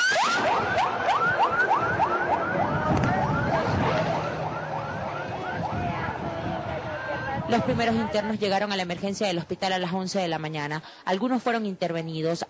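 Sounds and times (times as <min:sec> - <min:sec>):
ambulance siren wailing as ambulances enter and leave a prison: 0:00.0 - 0:07.7
deep rumble of traffic: 0:00.0 - 0:11.0
dense noisy street background: 0:00.0 - 0:12.4
speech: 0:07.5 - 0:12.4.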